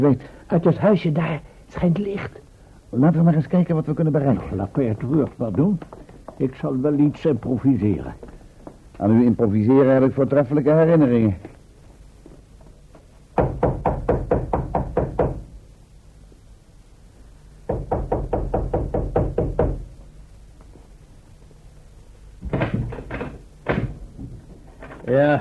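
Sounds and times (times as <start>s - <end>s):
speech: 0.0s - 8.4s, 9.0s - 11.5s
firm rapid knocking on a wooden door to get a guard to open it: 13.4s - 15.5s, 17.7s - 19.9s, 22.4s - 24.5s.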